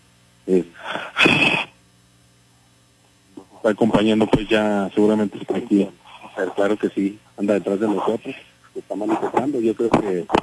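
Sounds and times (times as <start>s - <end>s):
faint hum: 0.0s - 10.4s
speech: 0.5s - 1.7s, 3.6s - 10.4s
person gasping: 0.8s - 1.7s.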